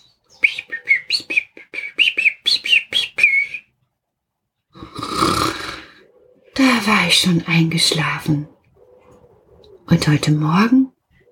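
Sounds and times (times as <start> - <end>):
small European robin singing: 0.0 - 3.8, 5.8 - 11.3
loud rough breathy snort-like noise: 4.8 - 6.1
speech: 6.6 - 8.6, 9.9 - 10.8.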